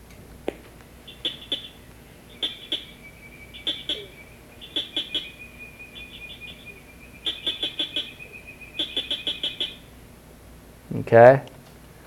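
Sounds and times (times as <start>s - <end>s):
southern cricket frog clicking calls: 0.5s - 9.8s
faint steady high tone: 0.9s - 10.2s
speech: 11.1s - 11.5s.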